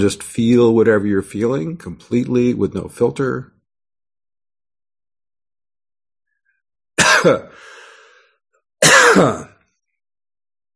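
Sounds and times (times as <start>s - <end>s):
speech: 0.0s - 3.5s, 7.2s - 7.8s, 9.2s - 9.5s
raspy throat-clearing rattle: 7.0s - 7.6s, 8.8s - 9.6s
harsh coughing bursts: 7.0s - 7.7s, 8.8s - 9.6s.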